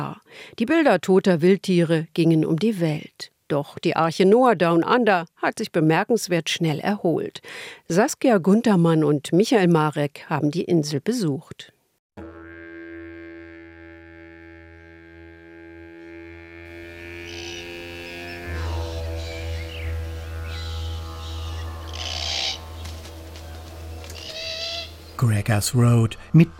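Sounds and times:
speech: 0:00.0 - 0:11.8, 0:25.2 - 0:26.5
low droning hum: 0:12.9 - 0:25.2
pair of glossy black cockatoos screeching and croaking: 0:17.2 - 0:25.2.

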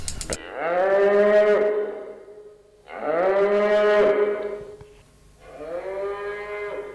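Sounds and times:
hungry cow mooing: 0:00.4 - 0:02.3, 0:02.9 - 0:04.7, 0:05.4 - 0:06.9.

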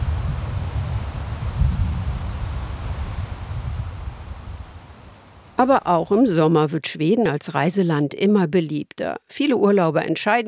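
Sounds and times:
wind hissing through grass: 0:00.0 - 0:05.9
low rolling sea surf rumbling: 0:00.0 - 0:06.1
speech: 0:05.6 - 0:10.4.

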